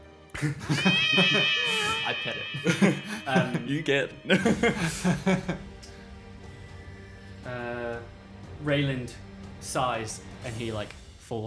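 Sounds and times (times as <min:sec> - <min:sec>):
speech: 0:00.4 - 0:05.7, 0:07.5 - 0:11.4
laughter: 0:00.4 - 0:05.8
human voice imitating a domestic cat meowing: 0:00.7 - 0:04.0.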